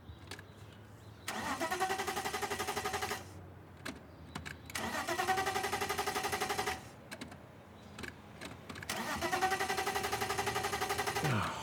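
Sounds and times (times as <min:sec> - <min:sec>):
car engine cranking: 0:01.2 - 0:03.3, 0:04.4 - 0:07.4, 0:08.0 - 0:11.4.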